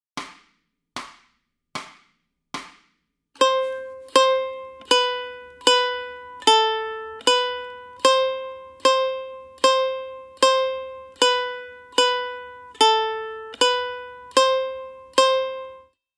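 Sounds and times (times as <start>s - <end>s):
ukulele playing a C warm-up: 3.4s - 15.9s.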